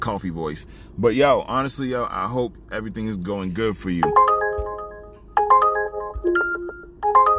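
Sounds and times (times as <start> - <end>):
speech: 0.0 - 4.3
phone ringtone with bright melodic electronic chime pattern: 4.0 - 7.3.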